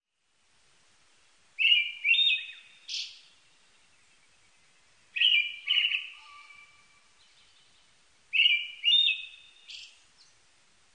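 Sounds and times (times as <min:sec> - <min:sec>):
brown-headed thrush whistled song: 0:01.6 - 0:03.2, 0:05.2 - 0:07.6, 0:08.3 - 0:10.0.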